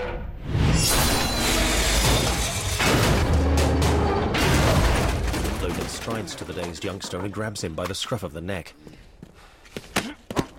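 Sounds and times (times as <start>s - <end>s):
metal fire escape crashing to the ground in an alley: 1.0s - 7.0s
speech: 6.3s - 9.1s.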